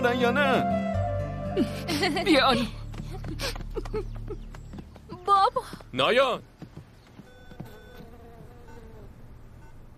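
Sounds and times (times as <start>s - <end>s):
speech: 0.0s - 1.0s, 1.6s - 4.5s, 5.3s - 6.5s
housefly buzzing: 7.2s - 9.8s.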